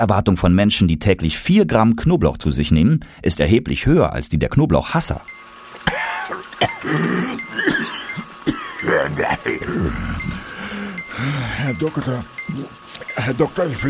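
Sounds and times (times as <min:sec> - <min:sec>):
speech: 0:00.0 - 0:05.4, 0:06.8 - 0:07.4, 0:08.8 - 0:10.4, 0:11.2 - 0:13.8
person coughing in harsh raspy bursts: 0:05.8 - 0:10.1
strained throat-clearing: 0:05.8 - 0:10.4
person groaning: 0:06.8 - 0:07.4, 0:09.0 - 0:11.5.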